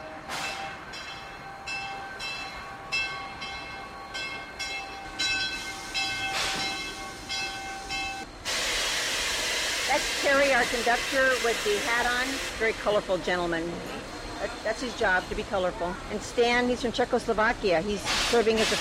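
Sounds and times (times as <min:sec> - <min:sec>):
train pulling into the station: 0:00.0 - 0:18.7
hissing steam of a train: 0:05.4 - 0:13.4, 0:18.0 - 0:18.7
speech: 0:10.0 - 0:18.7.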